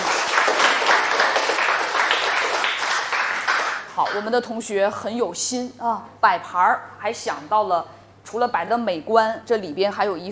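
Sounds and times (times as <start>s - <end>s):
room full of people applauding: 0.0s - 3.9s
speech: 4.0s - 10.3s.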